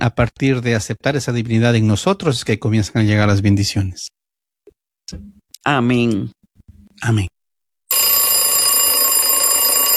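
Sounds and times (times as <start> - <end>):
speech: 0.0 - 4.2, 5.1 - 6.4, 7.0 - 7.3
alarm clock ringing: 7.9 - 9.9.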